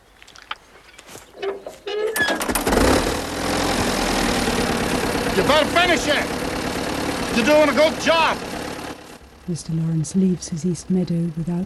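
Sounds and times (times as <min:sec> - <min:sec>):
old tractor engine cranked with a hand-turned starting handle: 0:01.5 - 0:11.6
speech: 0:05.4 - 0:06.4, 0:07.4 - 0:08.5, 0:09.5 - 0:11.6.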